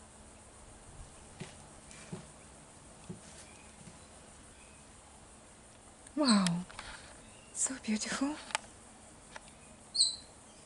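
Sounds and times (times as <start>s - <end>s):
speech: 6.2s - 6.6s, 7.6s - 8.6s
king parrot whistled call: 9.9s - 10.3s.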